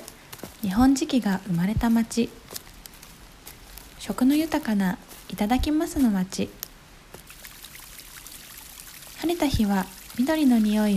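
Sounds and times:
speech: 0:00.6 - 0:02.5, 0:04.0 - 0:06.6, 0:09.2 - 0:10.9
flowing water near terraced rice fields in Arita, Saga Prefecture, Japan: 0:07.2 - 0:10.9.

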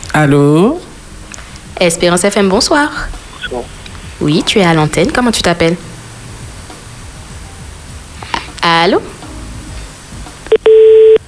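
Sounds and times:
speech: 0:00.2 - 0:00.8, 0:01.8 - 0:05.9, 0:08.8 - 0:09.2
telephone line tone after a caller drops off a live radio call-in: 0:10.5 - 0:11.2.

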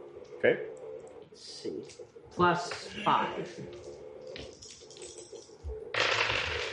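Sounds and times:
speech: 0:00.4 - 0:00.7, 0:01.4 - 0:03.9
dice clattering across a hard surface: 0:04.4 - 0:06.7.

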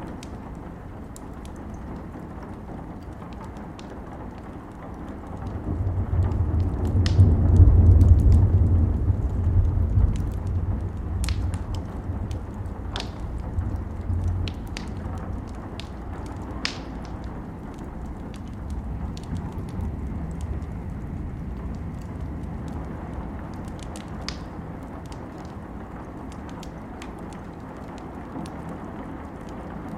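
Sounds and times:
campfire crackling with pops and snaps: 0:00.0 - 0:29.9
wind rumbling with strong gust: 0:04.2 - 0:29.9.

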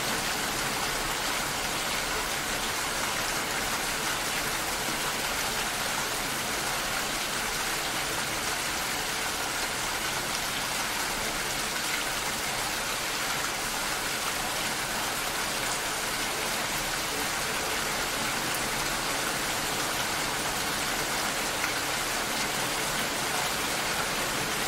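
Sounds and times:
gentle forest rain: 0:00.0 - 0:24.6.

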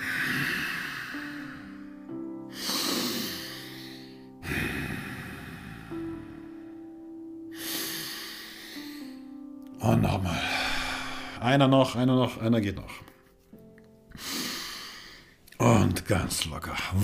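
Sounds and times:
slow deep breathing in and out during a guided breathing exercise: 0:00.0 - 0:09.4, 0:10.2 - 0:11.5, 0:14.1 - 0:15.4
soft sustained musical drone: 0:00.0 - 0:15.9
speech: 0:11.4 - 0:13.1, 0:16.1 - 0:17.0.

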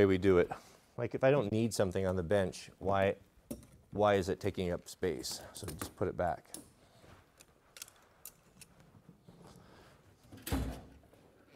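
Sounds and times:
speech: 0:00.0 - 0:06.7
drawer opening and closing: 0:10.3 - 0:11.0.

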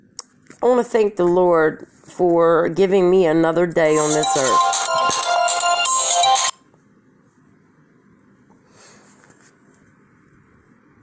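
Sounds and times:
speech: 0:00.6 - 0:05.2
phone ringtone from an incoming call: 0:04.0 - 0:06.6.

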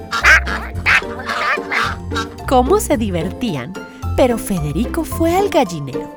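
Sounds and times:
ducks quacking in chorus: 0:00.0 - 0:02.4
speech: 0:02.5 - 0:06.1.

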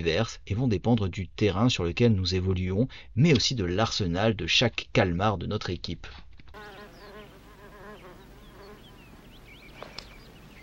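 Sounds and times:
speech: 0:00.0 - 0:06.7
housefly buzzing: 0:06.6 - 0:10.3.

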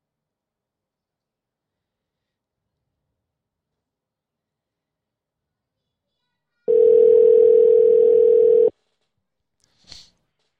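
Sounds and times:
electronic ring tone of a phone call connecting: 0:06.7 - 0:08.7.

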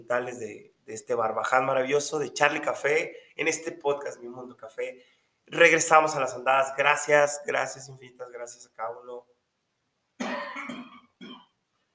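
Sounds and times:
speech: 0:00.0 - 0:09.4
loud raspy throaty cough: 0:10.2 - 0:11.6.

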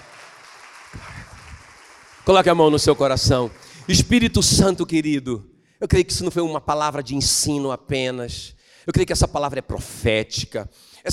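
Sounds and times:
crowd voices or cheering: 0:00.0 - 0:04.4
crowd applause: 0:00.0 - 0:04.9
speech: 0:02.3 - 0:11.1.

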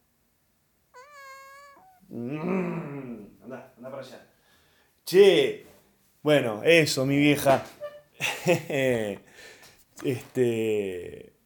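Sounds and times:
kitten meowing in the grass: 0:01.0 - 0:02.1
speech: 0:02.1 - 0:02.9, 0:03.5 - 0:04.3, 0:05.1 - 0:05.6, 0:06.2 - 0:11.3
laughter: 0:08.2 - 0:09.2.

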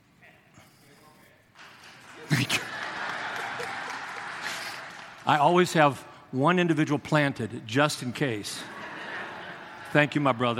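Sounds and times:
laughter: 0:01.9 - 0:05.3, 0:08.4 - 0:10.5
single person sharp hand claps: 0:02.3 - 0:05.4
speech: 0:05.3 - 0:08.8, 0:09.9 - 0:10.5.

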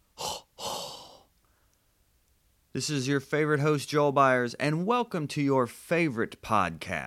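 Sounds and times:
hot breath blown straight into a microphone: 0:00.0 - 0:01.7
speech: 0:02.8 - 0:07.0.

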